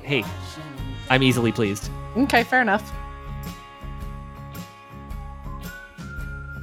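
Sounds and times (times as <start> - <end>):
full rhythmic band backing: 0.1 - 2.7
speech: 0.1 - 3.6
whistled melody: 5.0 - 6.6.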